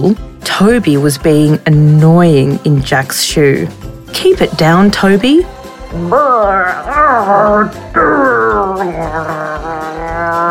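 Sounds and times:
speech: 0:00.0 - 0:09.6
voice imitating dog growling: 0:05.9 - 0:10.4.

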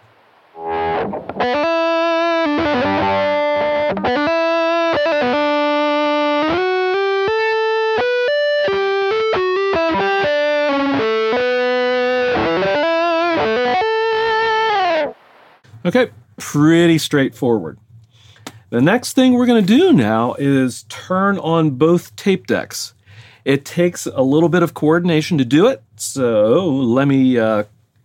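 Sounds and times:
electric guitar through a compressor and distortion pedal playing a lead line: 0:00.1 - 0:15.6
speech: 0:15.9 - 0:17.8, 0:18.7 - 0:27.8.

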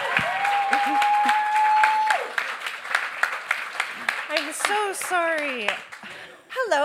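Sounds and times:
people cheering: 0:00.0 - 0:05.6
audience applause at a live gig: 0:00.0 - 0:06.2
speech: 0:04.7 - 0:05.9, 0:06.6 - 0:06.8.

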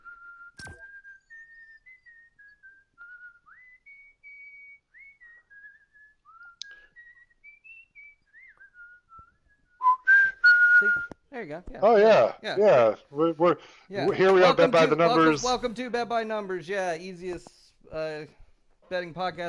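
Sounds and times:
person whistling a wandering melody: 0:00.0 - 0:11.2
brief click: 0:00.6 - 0:00.8
speech: 0:11.4 - 0:19.4
short breaths between whistled phrases: 0:13.5 - 0:14.0.

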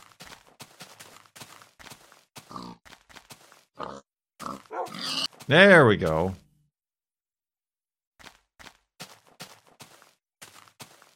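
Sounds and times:
video game pigs grunting and snorting: 0:02.4 - 0:02.8, 0:03.8 - 0:05.4
speech: 0:05.5 - 0:06.4.

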